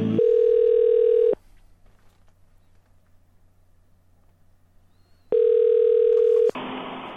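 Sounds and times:
telephone ringback tone: 0.1s - 1.4s, 5.3s - 6.5s
phone line click: 0.2s - 1.3s, 5.3s - 6.5s.

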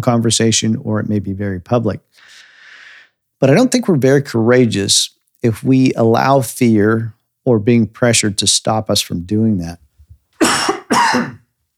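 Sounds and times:
speech: 0.0s - 2.3s, 3.4s - 11.4s
person coughing from an itchy throat: 10.4s - 11.4s.

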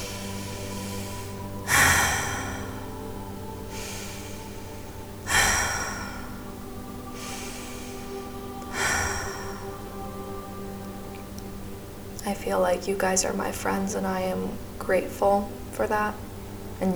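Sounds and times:
deep cleansing breaths closing a meditation practice: 0.0s - 13.3s
soft steady musical drone: 0.0s - 16.9s
speech: 12.3s - 16.2s, 16.8s - 16.9s.

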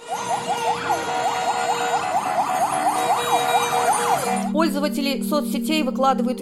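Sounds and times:
car horns blaring in a busy street in Minsk during a protest action: 0.0s - 4.5s
rapid warbling siren-like wails: 0.0s - 4.9s
speech: 4.6s - 6.4s.

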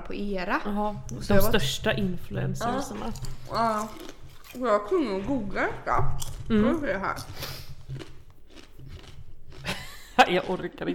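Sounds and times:
speech: 0.1s - 8.0s, 10.2s - 10.9s
chewing crunchy potato chips: 2.7s - 4.9s, 7.2s - 10.9s
laughter: 9.6s - 10.5s.

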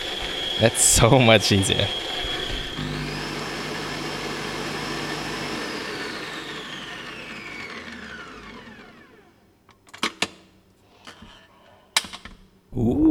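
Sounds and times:
electric mixer whipping a foam: 0.0s - 9.5s
speech: 0.6s - 2.0s.

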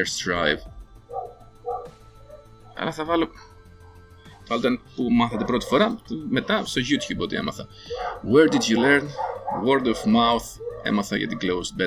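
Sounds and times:
speech: 0.0s - 0.7s, 2.8s - 3.5s, 4.5s - 11.8s
fainter dog yip: 1.1s - 2.5s, 5.3s - 7.2s, 7.9s - 11.6s
dog barking: 1.1s - 2.8s, 5.2s - 11.6s.

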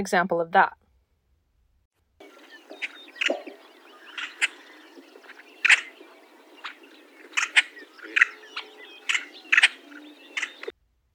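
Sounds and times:
speech: 0.0s - 0.8s
steady hiss of marsh noise: 2.2s - 10.7s
yellow-headed blackbird giving sharp dry doubled check calls: 2.2s - 10.7s.

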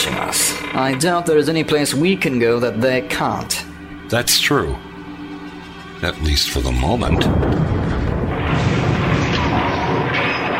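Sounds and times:
speech: 0.2s - 4.9s, 6.0s - 7.6s
spaceship weapons fire pounding a ship's shields in a science-fiction drama: 7.1s - 10.5s.

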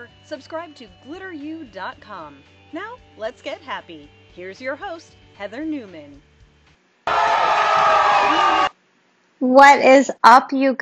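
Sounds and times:
speech: 0.2s - 6.3s, 9.4s - 10.7s
big crowd cheering: 7.1s - 8.8s.

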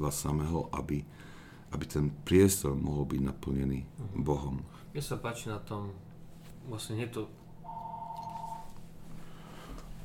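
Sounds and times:
speech: 0.0s - 7.4s
mobile phone electronic ring tone for incoming call: 7.6s - 8.7s.

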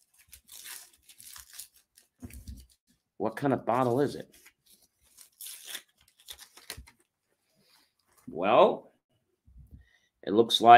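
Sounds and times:
wrapping paper tearing as a holiday gift is unwrapped: 0.0s - 2.8s, 4.3s - 7.0s
speech: 3.2s - 4.4s, 8.4s - 8.9s, 10.3s - 10.7s.

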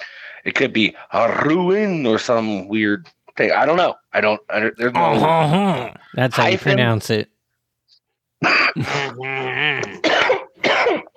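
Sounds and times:
speech: 0.4s - 7.3s, 8.4s - 10.1s
person coughing in a cough fit: 8.4s - 9.2s, 9.8s - 11.1s
harsh throat-clearing burst: 8.4s - 11.1s.

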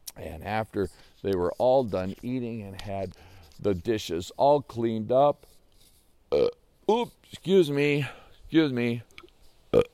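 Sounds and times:
speech: 0.2s - 5.6s, 6.3s - 9.1s, 9.7s - 9.9s
person burping after a supper of fish, potatoes and fresh tomatoes: 6.3s - 6.6s, 9.8s - 9.9s.

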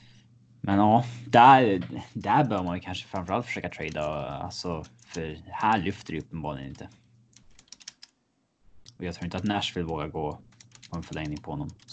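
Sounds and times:
speech: 0.6s - 7.0s, 9.0s - 11.9s
typing on a computer keyboard: 2.2s - 8.2s, 9.2s - 11.9s.

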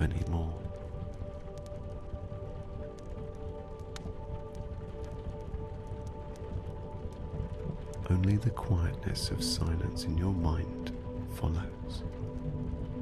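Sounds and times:
speech: 0.0s - 0.6s, 8.1s - 12.3s
steady soft rain pattering: 0.0s - 13.0s.

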